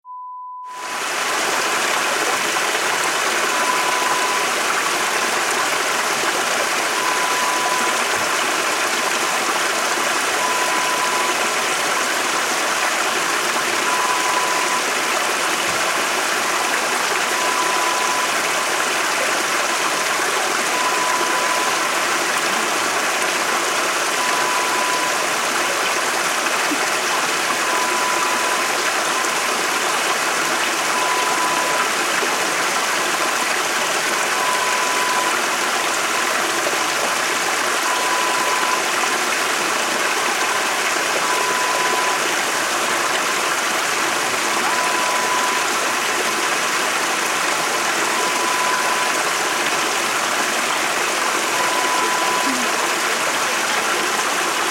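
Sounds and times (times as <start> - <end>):
waterfall: 0.7 - 54.7.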